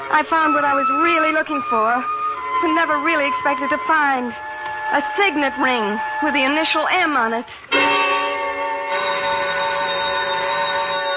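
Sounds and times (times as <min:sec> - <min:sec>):
speech: 0:00.1 - 0:07.8
telephone ringing with a metallic bell: 0:08.9 - 0:11.1.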